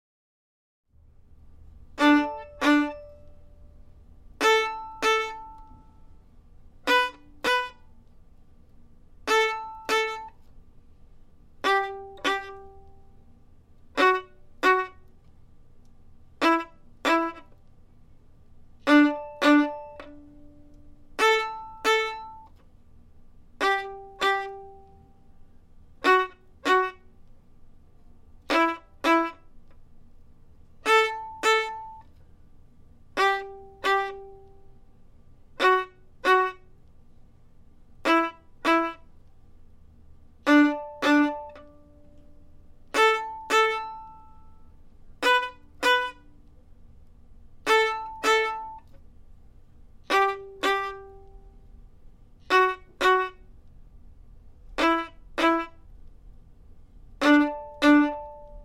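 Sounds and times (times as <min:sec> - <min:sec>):
violin melody: 0:01.9 - 0:08.1, 0:09.2 - 0:10.5, 0:11.6 - 0:15.3, 0:16.3 - 0:17.7, 0:18.8 - 0:22.6, 0:23.6 - 0:27.3, 0:28.4 - 0:29.8, 0:30.8 - 0:32.2, 0:33.1 - 0:34.9, 0:35.5 - 0:36.9, 0:38.0 - 0:39.1, 0:40.4 - 0:46.5, 0:47.6 - 0:49.0, 0:50.0 - 0:51.7, 0:52.4 - 0:53.7, 0:54.6 - 0:56.0, 0:57.2 - 0:58.6.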